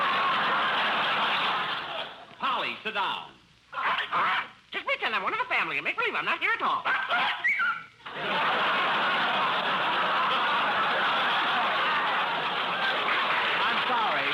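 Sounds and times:
laughter: 0.0 - 2.3, 8.0 - 14.3
speech: 2.8 - 3.4, 4.1 - 7.5, 8.2 - 8.9
person imitating a parrot squawking and cackling: 6.7 - 8.0.

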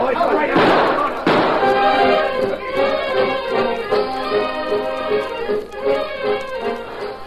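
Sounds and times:
signal gunshots fired by hunters in the woods: 0.3 - 3.5
tonal music: 0.6 - 7.2.

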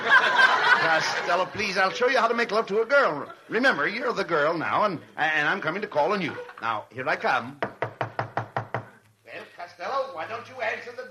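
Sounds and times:
laughter: 0.0 - 4.0, 6.1 - 6.8
speech: 1.0 - 7.6
knocking on a door: 7.6 - 9.0.

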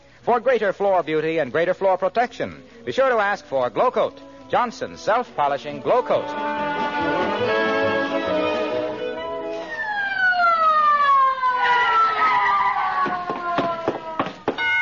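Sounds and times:
speech: 0.2 - 7.5
ambulance siren wailing and winding down: 6.2 - 14.4
sharp knocks: 13.0 - 14.7.

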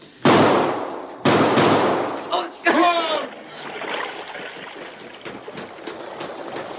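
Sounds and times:
gunshots with decay: 0.2 - 2.3
underground river water rushing in a cave: 2.3 - 6.7.

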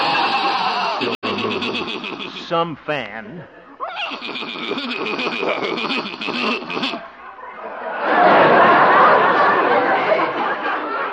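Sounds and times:
horse whinnying: 0.0 - 2.3, 3.8 - 7.0
laughter: 0.0 - 2.6, 5.1 - 6.0, 6.8 - 11.1
speech: 2.5 - 7.1.

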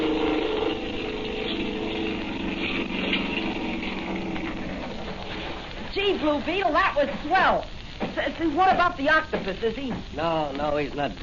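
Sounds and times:
motorboat engine droning: 0.0 - 5.7
speech: 6.0 - 11.2.

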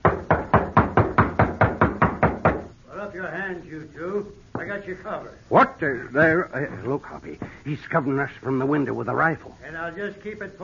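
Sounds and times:
firm knocking on a door: 0.0 - 2.7
speech: 3.2 - 10.6.

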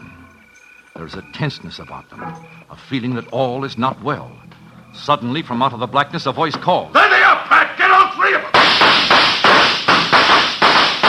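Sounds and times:
speech: 1.0 - 7.6
gunshots from more than one gun in an ambush: 8.5 - 11.0.

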